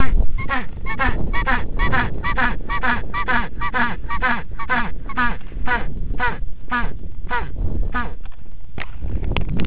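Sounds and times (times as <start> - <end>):
penguin calling: 0.0 - 8.2.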